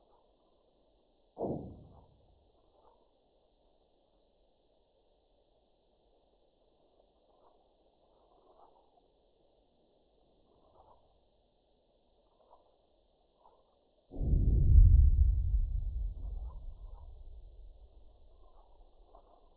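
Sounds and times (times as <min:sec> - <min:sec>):
sonified seismic signal of a magnitude 4.9 earthquake at 10.5 km depth: 0:14.2 - 0:18.8.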